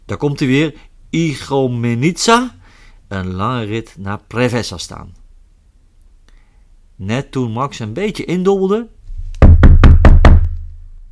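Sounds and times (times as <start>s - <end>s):
speech: 0.1s - 5.2s, 7.0s - 9.0s
firm knocks on a wooden cabin door: 9.4s - 10.7s.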